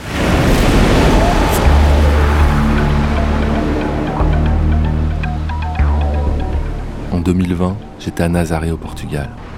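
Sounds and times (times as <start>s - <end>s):
ocean waves rolling onto the shore: 0.0s - 9.5s
speech: 7.3s - 9.5s.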